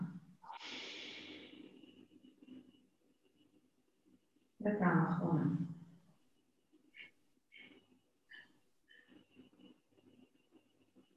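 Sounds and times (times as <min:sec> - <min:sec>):
long continuous inhale during a guided breathing exercise: 0:00.5 - 0:01.9
speech: 0:04.6 - 0:05.7.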